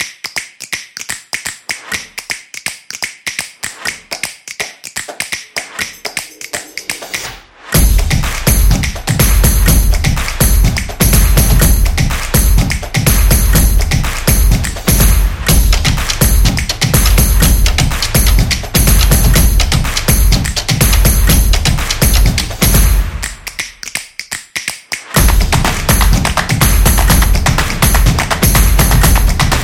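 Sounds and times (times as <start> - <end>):
hand clap: 0.0 - 29.6
drum: 5.7 - 23.6, 25.1 - 29.6.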